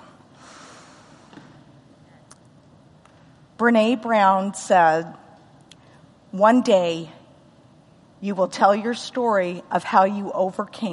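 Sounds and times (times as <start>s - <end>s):
faint sniff-like sounds: 0.4s - 1.4s
person inhaling deeply: 0.4s - 1.4s
speech: 3.6s - 5.2s, 6.3s - 7.2s, 8.2s - 10.9s.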